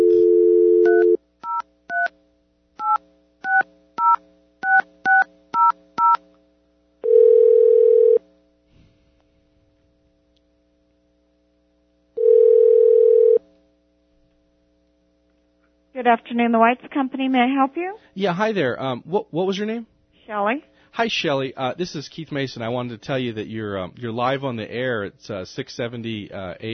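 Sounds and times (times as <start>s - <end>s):
long telephone ringing tones: 0.0s - 1.2s, 7.0s - 8.2s, 12.2s - 13.4s
steady telephone dial tone: 0.0s - 2.1s, 7.0s - 8.2s, 12.2s - 13.4s
telephone keypad dialing beeps: 2.8s - 6.2s
speech: 16.1s - 26.7s.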